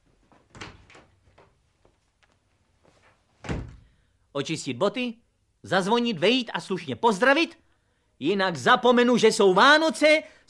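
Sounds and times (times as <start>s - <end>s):
door opening and closing: 0.3s - 1.6s, 3.4s - 3.9s
speech: 4.4s - 7.6s, 8.2s - 10.4s.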